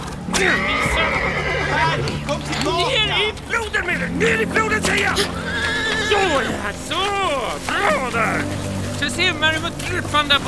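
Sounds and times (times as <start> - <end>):
horse whinnying: 0.3 - 2.2, 5.0 - 6.7
speech: 0.4 - 1.2, 1.8 - 10.4.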